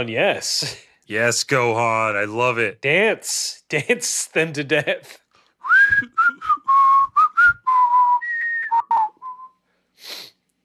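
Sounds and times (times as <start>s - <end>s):
speech: 0.0s - 5.2s, 5.9s - 6.5s
person whistling a TV theme tune: 5.6s - 9.6s.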